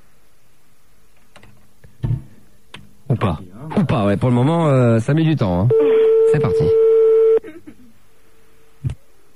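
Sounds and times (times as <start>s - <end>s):
speech: 3.2s - 6.8s
telephone electronic ringing tone on a call: 5.7s - 7.4s.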